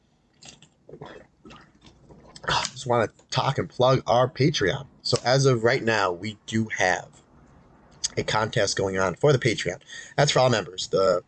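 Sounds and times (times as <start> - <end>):
person sipping a drink slurping and swallowing: 0.4 - 3.3
speech: 2.8 - 7.2, 8.2 - 11.2.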